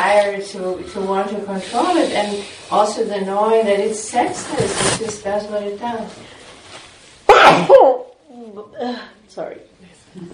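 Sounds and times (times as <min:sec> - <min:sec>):
speech: 0:00.0 - 0:06.4, 0:07.5 - 0:10.3
loud sneeze: 0:07.2 - 0:08.1.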